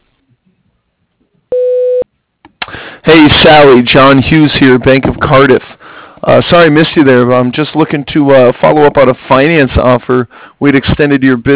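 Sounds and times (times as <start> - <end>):
voicemail tone electronic beep: 1.5 - 2.0
speech: 3.1 - 11.5.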